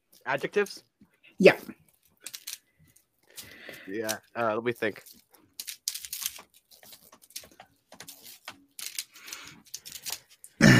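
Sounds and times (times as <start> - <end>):
speech: 0.2 - 1.8, 3.9 - 5.2
typing on a keyboard: 5.6 - 10.5.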